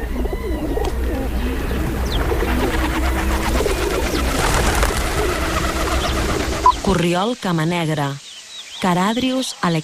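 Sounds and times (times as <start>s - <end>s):
rock dove cooing: 0.0s - 6.9s
steady outdoor hum: 0.0s - 9.8s
speech: 6.9s - 8.2s, 8.8s - 9.8s.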